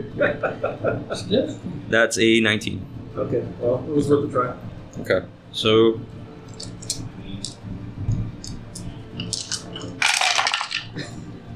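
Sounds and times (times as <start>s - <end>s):
laughter: 0.0s - 1.5s
speech: 0.0s - 6.2s
low hum: 0.0s - 11.5s
handful of dice rolling on a hard surface: 9.4s - 10.9s.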